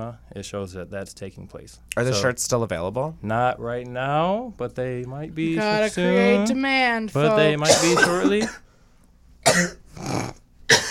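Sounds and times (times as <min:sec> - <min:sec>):
speech: 0:00.0 - 0:08.6, 0:09.6 - 0:09.8
person coughing after inhaling a piece of dust: 0:07.6 - 0:08.7, 0:09.4 - 0:10.9
throat clearing: 0:09.5 - 0:10.9.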